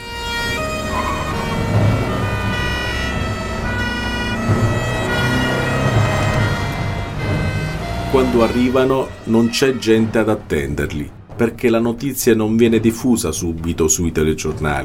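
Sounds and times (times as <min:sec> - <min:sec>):
police car convoy sirens wailing from Agrigento toward Palermo, Italy: 0:00.0 - 0:10.6
police convoy vehicles rumbling: 0:00.0 - 0:11.6
speech: 0:08.1 - 0:14.8.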